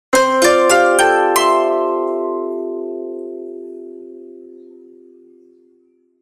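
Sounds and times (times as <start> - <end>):
koto logo jingle: 0.2 - 4.4.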